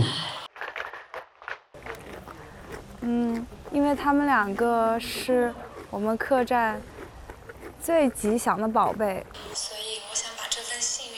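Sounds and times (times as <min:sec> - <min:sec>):
pony chewing its food beside an inn: 0:01.8 - 0:09.4
speech: 0:03.0 - 0:06.9, 0:07.8 - 0:09.6.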